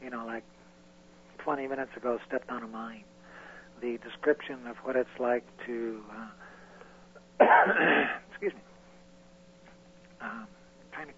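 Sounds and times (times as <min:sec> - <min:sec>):
steady faint hum: 0:00.0 - 0:11.1
speech: 0:00.1 - 0:00.7, 0:01.4 - 0:03.1, 0:03.8 - 0:06.4, 0:07.4 - 0:08.7, 0:10.2 - 0:11.1
person clearing throat while fighting off a cold: 0:07.4 - 0:08.5.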